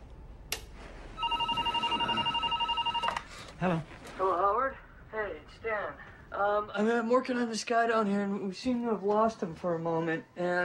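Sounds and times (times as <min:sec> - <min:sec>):
telephone ringing: 0:01.2 - 0:03.4
speech: 0:03.6 - 0:10.6.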